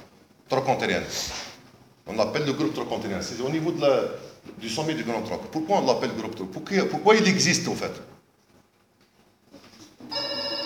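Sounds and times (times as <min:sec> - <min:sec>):
faint low noise: 0:00.0 - 0:10.6
speech: 0:00.5 - 0:01.5, 0:02.1 - 0:08.1
mobile phone ringtone in a lecture hall: 0:10.1 - 0:10.6.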